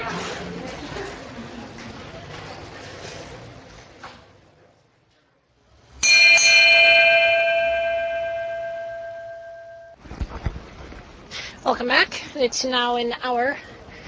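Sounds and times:
noisy background: 0.0s - 14.0s
single bell struck on radio to mark a time break: 6.0s - 10.0s
speech: 11.7s - 13.7s.

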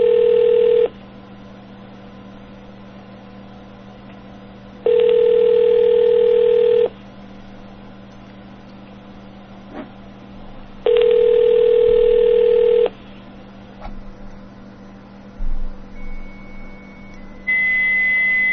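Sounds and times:
long buzzy telephone ringback tones: 0.0s - 0.9s, 4.9s - 6.9s, 10.9s - 12.9s, 16.0s - 18.5s
faint hum: 0.0s - 18.5s.

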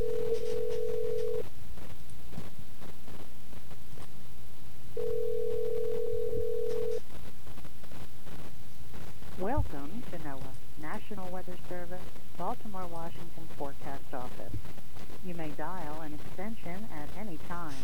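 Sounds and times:
ringing tone of an outgoing call from a cell phone: 0.0s - 1.4s, 5.0s - 7.0s
low noise: 0.0s - 17.8s
speech: 11.1s - 17.0s.

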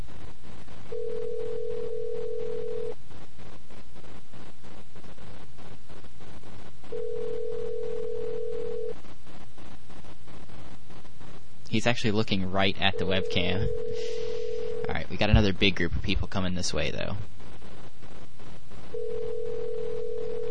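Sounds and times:
constant noise: 0.0s - 20.4s
phone line ringback tone: 0.9s - 2.9s, 7.0s - 8.9s, 13.2s - 14.9s, 19.0s - 20.4s
speech: 11.8s - 14.2s, 14.9s - 17.4s.

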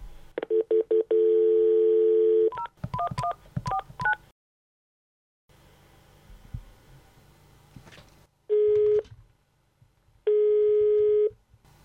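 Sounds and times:
long busy-signal tones: 0.5s - 2.6s, 10.3s - 11.3s
steady phone tone: 0.5s - 2.6s, 8.5s - 9.0s, 10.3s - 11.3s.

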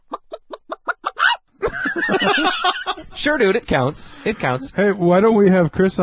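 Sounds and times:
person imitating a chicken clucking and squawking: 0.0s - 1.4s
laughter: 0.1s - 5.0s
speech: 2.1s - 6.0s.

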